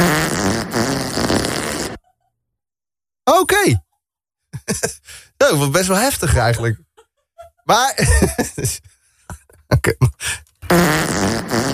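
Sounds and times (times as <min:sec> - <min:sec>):
loud drawn-out sputtering fart: 0:00.0 - 0:02.0, 0:10.7 - 0:11.7
laughter: 0:04.6 - 0:05.1, 0:06.2 - 0:10.3
speech: 0:04.8 - 0:06.9, 0:07.7 - 0:09.0, 0:09.8 - 0:10.4.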